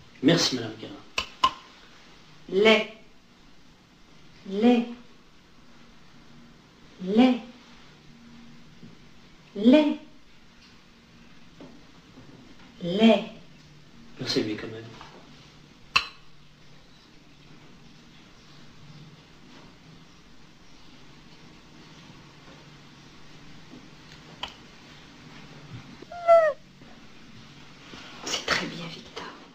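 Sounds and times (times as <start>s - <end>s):
speech: 0.2s - 1.1s, 2.5s - 3.0s, 4.4s - 5.0s, 7.0s - 7.5s, 9.6s - 10.0s, 12.8s - 13.4s, 14.2s - 15.0s
child imitating a cat meow: 26.0s - 26.6s
vocal noise: 26.0s - 26.6s.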